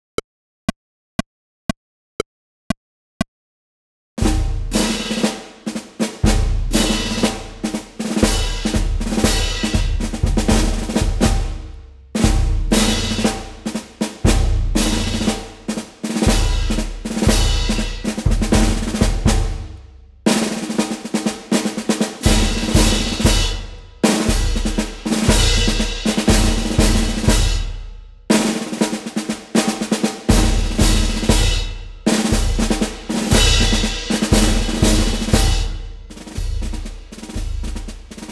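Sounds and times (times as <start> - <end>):
drum march: 4.2 - 38.3.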